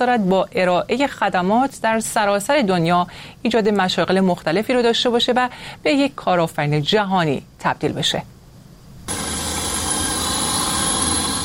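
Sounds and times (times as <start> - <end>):
speech: 0.0 - 8.4
delivery drone motors whirring in Balbriggan Ireland: 9.1 - 11.4
thin high whine of delivery drone: 9.1 - 11.4.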